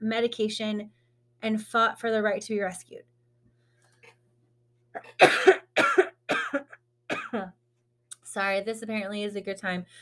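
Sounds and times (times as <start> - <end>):
speech: 0.0 - 3.1, 5.0 - 5.9, 8.4 - 10.0
person coughing in a harsh allergy coughing fit: 5.0 - 7.6.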